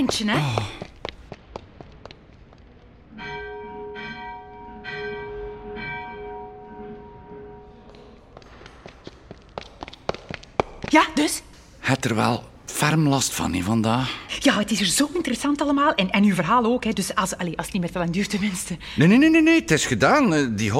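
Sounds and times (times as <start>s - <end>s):
speech: 0.0s - 0.8s, 10.9s - 20.7s
church bells ringing: 3.1s - 8.2s.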